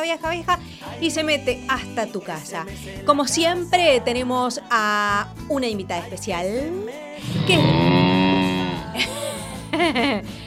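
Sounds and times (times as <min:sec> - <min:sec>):
speech: 0:00.0 - 0:08.0, 0:09.8 - 0:10.4
voice of a sheep character imitating a cow's moo: 0:07.2 - 0:09.0
laughter: 0:08.7 - 0:10.3.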